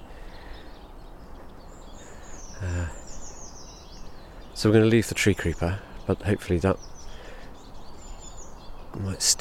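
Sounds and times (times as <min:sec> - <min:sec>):
faint twittering chatter of siskins: 0:00.0 - 0:09.3
outdoor background noise: 0:00.0 - 0:09.3
speech: 0:04.6 - 0:07.0, 0:09.0 - 0:09.3.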